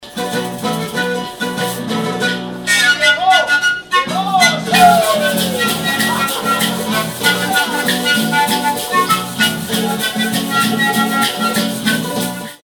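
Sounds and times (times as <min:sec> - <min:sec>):
flutes playing in Peru: 0:00.0 - 0:12.6.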